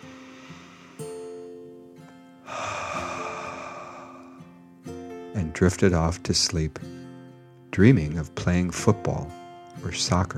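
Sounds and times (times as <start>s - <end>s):
slow deep calming breath in and out: 0.0s - 4.6s
gentle sustained musical tones: 0.0s - 5.0s
speech: 5.4s - 7.0s, 7.8s - 10.3s.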